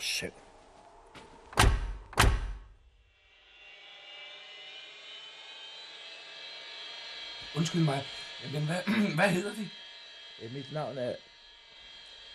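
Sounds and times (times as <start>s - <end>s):
speech: 0.2s - 0.4s, 7.6s - 9.8s, 10.4s - 11.3s
heavy thuds: 1.5s - 2.7s.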